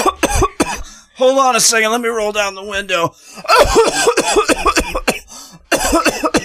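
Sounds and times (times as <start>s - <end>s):
harsh coughing fit: 0.0s - 1.0s, 3.4s - 6.4s
speech: 1.2s - 5.0s.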